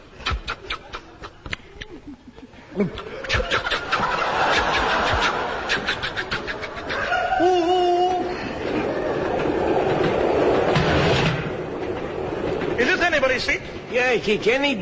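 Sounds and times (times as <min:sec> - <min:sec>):
laughter: 0:00.8 - 0:10.7
speech: 0:02.8 - 0:03.1, 0:14.0 - 0:14.8
train rumbling along rails with rhythmic clatter: 0:07.1 - 0:14.8.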